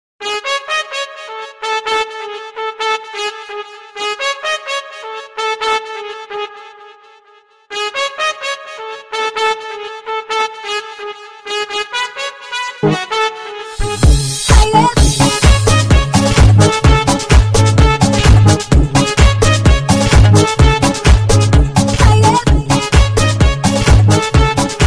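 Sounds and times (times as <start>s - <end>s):
army trumpet ringtone: 0.2s - 24.8s.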